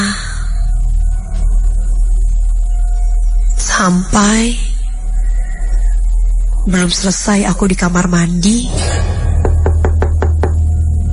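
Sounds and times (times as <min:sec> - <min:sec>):
loud steady low hum: 0:00.0 - 0:11.1
speech: 0:03.8 - 0:04.6, 0:06.6 - 0:09.1
knocking on a bathroom door: 0:09.4 - 0:10.8.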